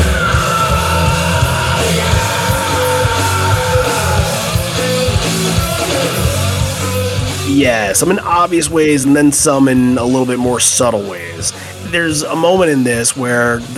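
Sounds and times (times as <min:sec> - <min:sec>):
raw sustained scream at start of a rock song: 0:00.0 - 0:06.4
pounding rock drums: 0:00.0 - 0:09.2
distorted guitars in loud dense rock music: 0:00.0 - 0:13.7
speech: 0:07.6 - 0:13.7.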